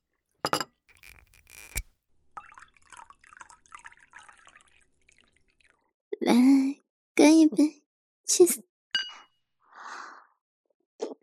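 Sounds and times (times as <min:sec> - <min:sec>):
red wine pouring into a glass: 0:01.0 - 0:01.8, 0:02.4 - 0:05.8
speech: 0:07.3 - 0:08.6.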